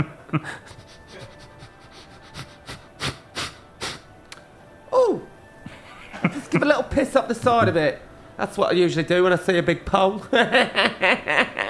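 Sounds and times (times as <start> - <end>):
speech: 0.0 - 0.8, 6.2 - 11.6
person imitating dog sniffing: 0.6 - 4.1
laughter: 5.6 - 6.9, 10.2 - 11.6.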